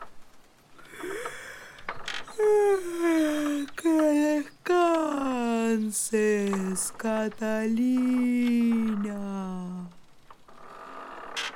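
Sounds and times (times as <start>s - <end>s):
drawn-out yawn from an oak tree character at bedtime: 0.8s - 10.0s
speech: 5.9s - 9.8s.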